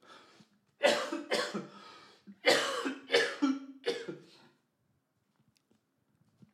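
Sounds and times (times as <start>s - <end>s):
person coughing in harsh bursts: 0.8s - 4.3s.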